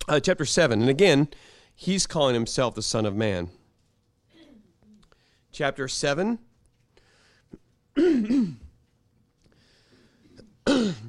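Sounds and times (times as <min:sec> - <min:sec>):
speech: 0:00.1 - 0:03.6, 0:05.5 - 0:06.5, 0:08.0 - 0:08.6
person clearing throat: 0:08.0 - 0:08.8, 0:10.2 - 0:11.0.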